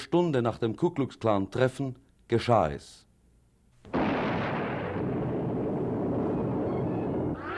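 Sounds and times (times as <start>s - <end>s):
speech: 0.1s - 3.0s
loud explosion destroying a new single-storey house: 3.9s - 7.4s.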